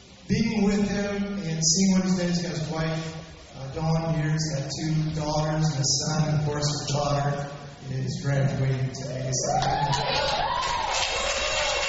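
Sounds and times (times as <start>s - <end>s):
speech: 0.3s - 10.8s
crowd cheering and whooping: 9.4s - 11.8s
people yelling: 9.4s - 11.8s.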